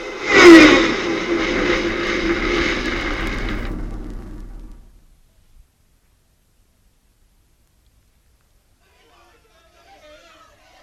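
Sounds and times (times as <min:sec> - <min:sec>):
vehicle engine running: 0:00.0 - 0:05.1.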